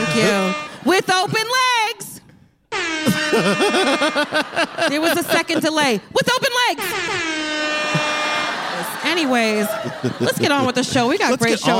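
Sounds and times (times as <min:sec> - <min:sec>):
air horn sound effect blaring: 0:00.0 - 0:01.7, 0:02.7 - 0:05.6, 0:06.6 - 0:11.0
speech: 0:00.2 - 0:01.7, 0:03.0 - 0:07.3, 0:09.0 - 0:11.7
laughter: 0:03.1 - 0:07.0, 0:07.8 - 0:11.7.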